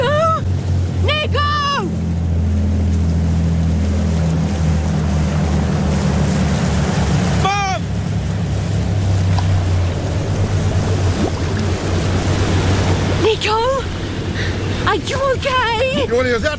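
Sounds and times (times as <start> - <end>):
boat engine droning on open water: 0.0 - 16.5
rushing water with waves: 0.0 - 16.5
wind: 0.0 - 16.5
person shouting a call: 1.1 - 1.9, 7.4 - 7.9.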